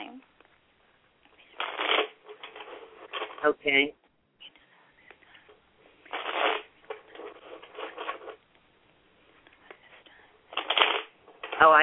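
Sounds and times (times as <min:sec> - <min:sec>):
shuffling tarot cards: 0:01.6 - 0:03.4, 0:06.1 - 0:08.4
speech: 0:03.4 - 0:04.0.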